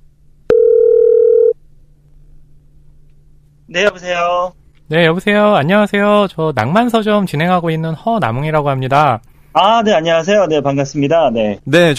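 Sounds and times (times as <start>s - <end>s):
telephone ringback tone while a call is being connected: 0.5s - 1.6s
speech: 3.7s - 11.9s.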